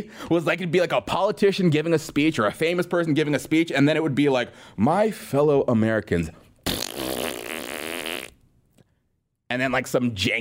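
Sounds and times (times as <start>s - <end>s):
speech: 0.0s - 6.4s, 9.5s - 10.3s
fart sound effect: 6.6s - 8.4s.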